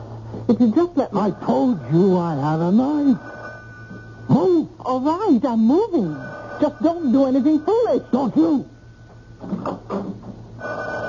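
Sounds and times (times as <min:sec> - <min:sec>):
speech: 0:00.5 - 0:03.3, 0:04.3 - 0:08.7
telephone by a bed ringing with a loud rattling bell: 0:03.1 - 0:04.4, 0:05.8 - 0:08.3, 0:10.6 - 0:11.0.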